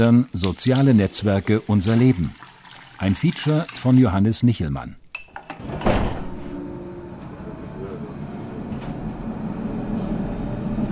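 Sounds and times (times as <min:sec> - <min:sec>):
speech: 0:00.0 - 0:05.0
crowded commuter train rumbling: 0:06.4 - 0:10.9.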